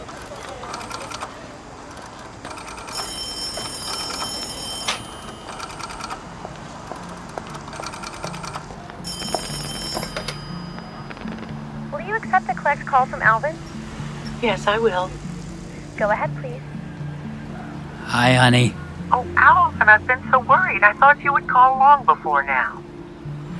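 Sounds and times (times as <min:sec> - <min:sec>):
telephone ringing on the line after a number is dialed: 0:02.5 - 0:12.6
speech: 0:12.7 - 0:13.7, 0:14.4 - 0:15.2, 0:16.0 - 0:16.7, 0:18.2 - 0:18.8, 0:19.4 - 0:22.8.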